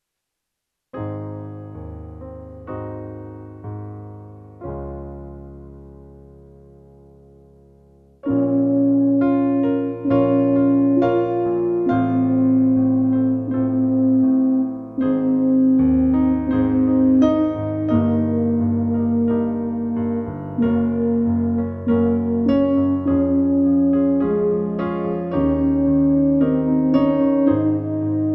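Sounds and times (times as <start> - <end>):
brass instrument playing with slow tempo changes: 8.2 - 28.3.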